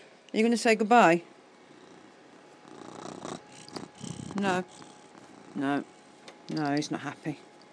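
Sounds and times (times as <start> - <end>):
speech: 0.3 - 1.3, 4.4 - 4.9, 5.6 - 5.9, 6.5 - 7.5
male cat purring: 1.6 - 6.2.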